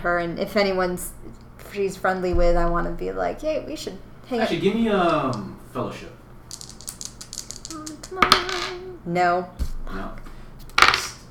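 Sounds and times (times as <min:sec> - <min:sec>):
speech: 0:00.0 - 0:06.2, 0:09.0 - 0:10.2
dice clattering across a hard tabletop: 0:06.5 - 0:08.8, 0:10.8 - 0:11.2.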